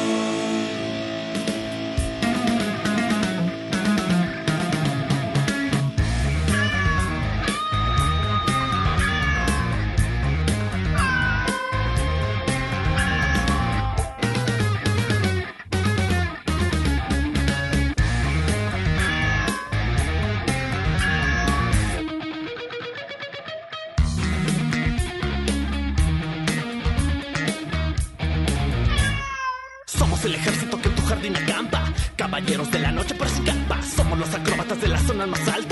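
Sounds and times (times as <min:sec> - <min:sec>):
loud driving music with a steady beat: 0:00.0 - 0:22.1, 0:24.0 - 0:29.0, 0:29.9 - 0:35.7
cat meowing: 0:06.4 - 0:09.9, 0:10.9 - 0:14.2, 0:18.9 - 0:19.9, 0:20.8 - 0:21.8, 0:28.9 - 0:29.9.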